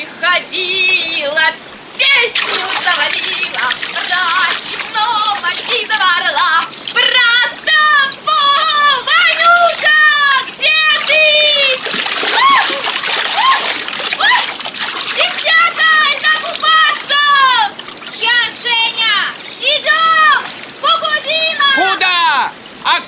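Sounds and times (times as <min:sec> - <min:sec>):
speech: 0:00.2 - 0:09.1
water splashing as people bathe near a riverbank: 0:02.0 - 0:22.8
loud excited voices shrieking and calling: 0:07.0 - 0:17.8.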